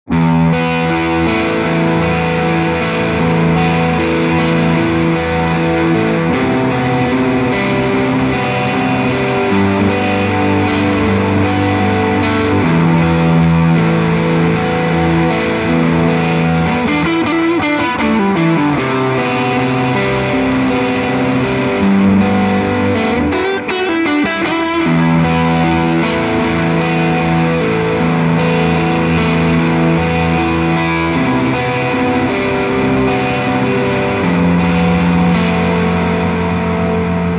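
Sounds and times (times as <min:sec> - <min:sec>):
Les Paul electric guitar with superwide fuzz: 0:00.0 - 0:37.3.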